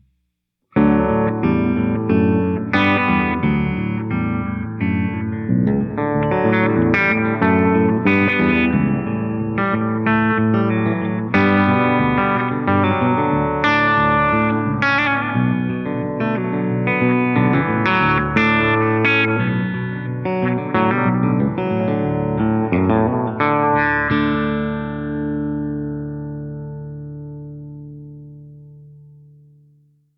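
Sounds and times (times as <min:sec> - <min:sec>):
filtered feedback delay on baritone: 0:00.8 - 0:29.8.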